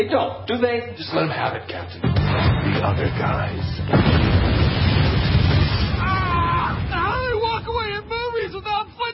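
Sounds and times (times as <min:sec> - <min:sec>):
speech: 0:00.0 - 0:05.2
loud rumbling movie explosion: 0:02.2 - 0:08.2.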